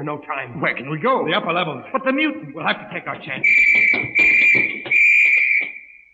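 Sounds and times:
speech: 0:00.0 - 0:04.7
loud steady high-pitched alarm tone: 0:03.4 - 0:06.0.

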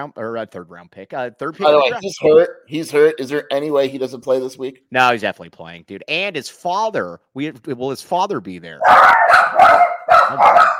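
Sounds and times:
speech: 0:00.0 - 0:10.7
dogs barking: 0:08.8 - 0:10.7.

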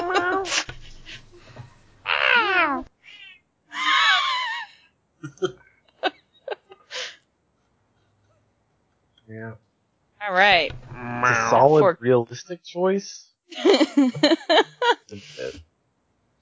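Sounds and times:
laughter: 0:00.0 - 0:01.6, 0:05.2 - 0:07.1, 0:11.2 - 0:13.0, 0:13.6 - 0:15.6
cat meowing: 0:02.1 - 0:02.9, 0:11.0 - 0:11.9
speech: 0:10.4 - 0:15.7.

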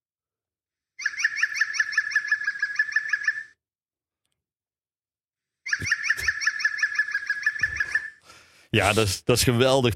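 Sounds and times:
green woodpecker ringing laughing call: 0:01.0 - 0:03.5, 0:05.7 - 0:08.3
speech: 0:08.7 - 0:09.9.

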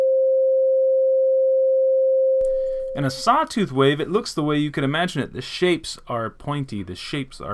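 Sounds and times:
pure mid-range sine tone: 0:00.0 - 0:02.4
speech: 0:03.0 - 0:07.5.

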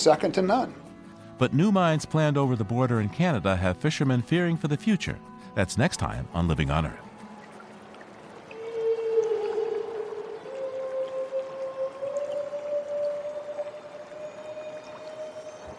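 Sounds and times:
speech: 0:00.0 - 0:07.0
humpback whale call underwater: 0:07.0 - 0:15.7
soft underwater hiss: 0:07.0 - 0:15.7.

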